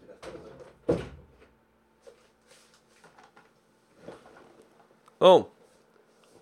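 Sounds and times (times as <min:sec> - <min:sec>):
door pushed shut: 0:00.2 - 0:01.4
speech: 0:05.2 - 0:05.5.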